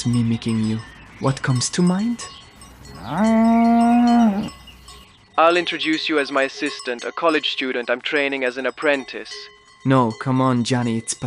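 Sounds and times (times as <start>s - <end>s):
speech: 0.0s - 2.4s, 3.0s - 3.7s, 5.4s - 11.2s
cow mooing: 2.9s - 4.7s.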